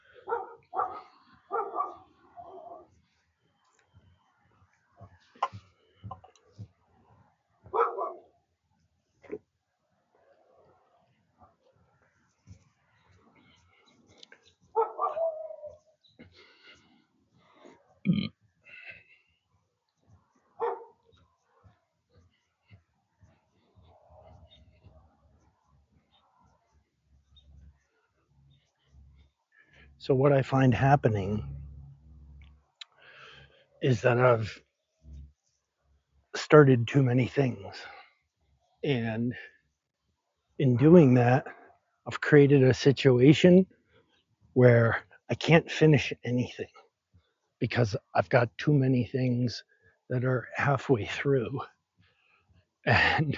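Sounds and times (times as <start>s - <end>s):
male dog barking: 0.2s - 2.9s, 7.6s - 8.3s, 14.7s - 15.8s, 20.6s - 21.8s
speech: 30.0s - 31.5s, 33.8s - 34.7s, 36.5s - 38.0s, 38.8s - 39.6s, 40.6s - 43.8s, 44.6s - 46.8s, 47.6s - 51.8s, 52.8s - 53.3s.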